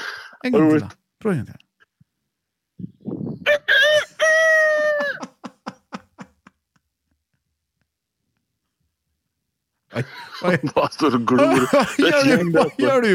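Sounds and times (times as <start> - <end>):
speech: 0.4 - 1.6, 10.0 - 13.1
man imitating a rooster crowing: 3.4 - 5.2
laughter: 4.6 - 6.8, 9.9 - 13.1.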